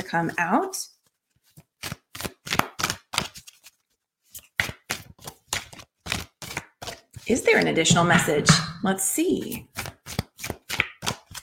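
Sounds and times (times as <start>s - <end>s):
speech: 0.1s - 1.0s, 7.3s - 9.7s
deck of oracle cards being shuffled during a card reading: 1.0s - 7.7s, 9.4s - 11.4s.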